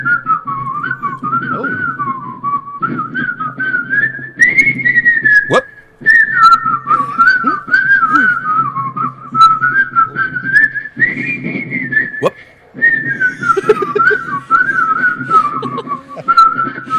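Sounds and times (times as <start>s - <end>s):
lively whistled melody from a record: 0.0s - 16.9s
steady backing accompaniment: 0.3s - 16.9s
laughter: 13.1s - 16.9s.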